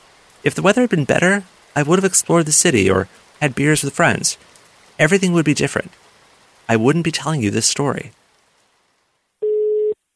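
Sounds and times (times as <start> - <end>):
speech: 0.4 - 6.0, 6.7 - 8.2
electronic phone ringing tone on a work phone call line: 9.4 - 10.0.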